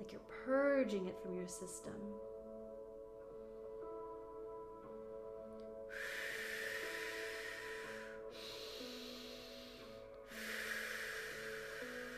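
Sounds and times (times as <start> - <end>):
speech: 0.0 - 2.3
soft steady musical drone: 0.0 - 12.1
powerful breathwork exhales: 5.9 - 12.1.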